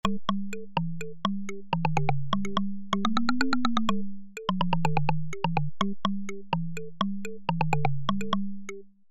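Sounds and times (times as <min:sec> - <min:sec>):
xylophone: 0:00.0 - 0:09.0.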